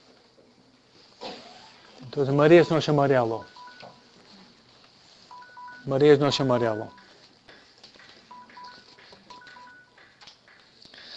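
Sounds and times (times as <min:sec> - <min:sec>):
noisy room background: 0:00.0 - 0:11.1
speech: 0:02.1 - 0:03.5, 0:05.9 - 0:07.0
short electronic keypad beeps from a mobile phone: 0:02.6 - 0:04.0, 0:05.3 - 0:07.2, 0:08.3 - 0:10.0.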